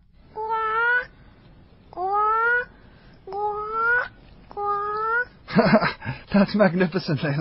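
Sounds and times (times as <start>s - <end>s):
child imitating a bird with squawking calls: 0.4s - 1.1s, 2.0s - 2.7s, 3.3s - 5.4s
speech: 5.6s - 7.4s.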